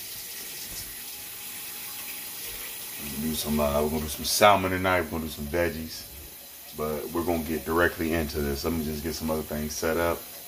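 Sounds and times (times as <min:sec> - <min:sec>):
water pouring while dinner is being made: 0:00.0 - 0:10.4
speech: 0:03.0 - 0:06.1, 0:06.8 - 0:10.3.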